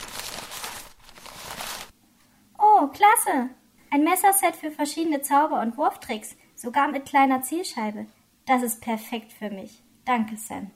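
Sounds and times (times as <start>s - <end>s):
gift wrapping paper torn open: 0.0s - 1.9s
speech: 2.9s - 10.7s.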